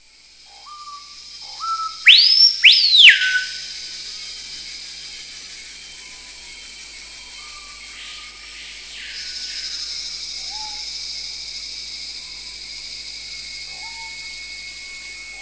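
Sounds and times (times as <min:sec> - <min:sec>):
steady high hiss: 0:00.0 - 0:15.4
screaming piha calling: 0:01.6 - 0:03.7.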